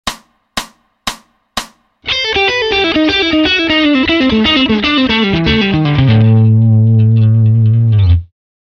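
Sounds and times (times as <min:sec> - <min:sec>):
fast A Dorian melodic line: 0:02.1 - 0:07.7.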